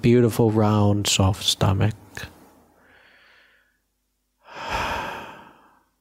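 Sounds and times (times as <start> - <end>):
speech: 0.0 - 2.4
slow human breathing into the stomach during a relaxation exercise: 2.7 - 5.9.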